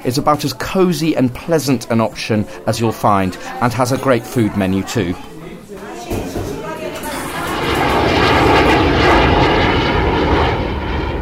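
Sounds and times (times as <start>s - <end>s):
speech: 0.0s - 5.3s
aircraft engines roaring as the plane lands in Johannesburg: 7.0s - 11.1s.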